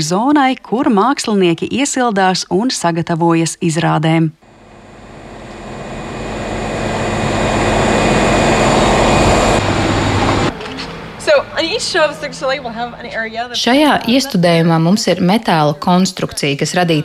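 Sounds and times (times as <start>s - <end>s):
speech: 0.0s - 4.4s, 11.9s - 17.0s
washing machines rumbling backstage at a stage production: 4.4s - 13.7s
faint hum: 4.4s - 14.1s.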